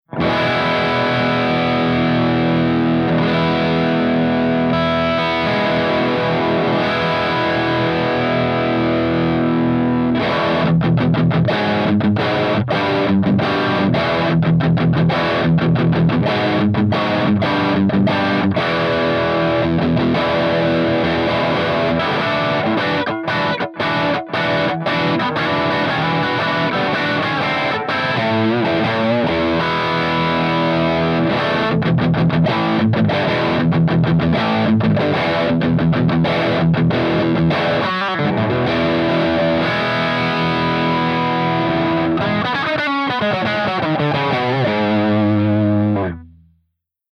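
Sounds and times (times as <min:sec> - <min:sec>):
distorted guitar through amplifier drive channel: 0:00.0 - 0:46.6.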